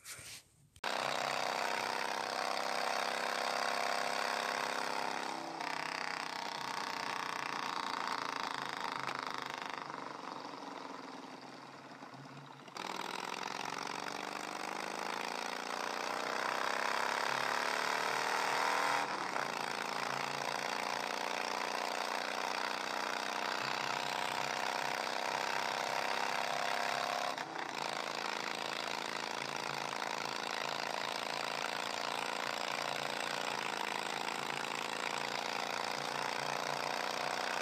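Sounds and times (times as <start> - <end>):
motorbike engine revving and accelerating: 0.8 - 37.6.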